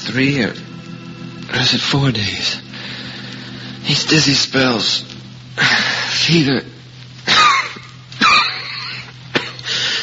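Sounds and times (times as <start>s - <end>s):
low steady hum: 0.0s - 10.0s
speech: 0.1s - 0.7s, 1.5s - 3.0s, 3.8s - 6.7s
person coughing harshly: 7.3s - 9.6s.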